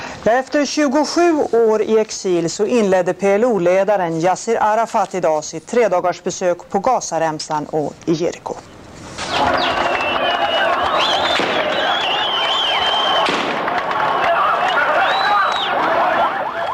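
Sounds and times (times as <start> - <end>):
speech: 0.2 - 8.8
crowd of Palestinians cheering and shouting in the Gaza Strip: 9.3 - 16.7
high whistles or ululating cries: 9.3 - 16.7
rapid automatic-weapon fire bursts: 11.3 - 11.9, 13.2 - 13.9.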